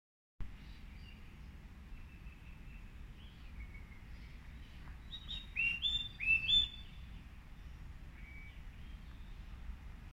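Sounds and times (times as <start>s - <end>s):
Black-winged cuckooshrike calling: 5.1s - 7.0s, 8.2s - 8.6s.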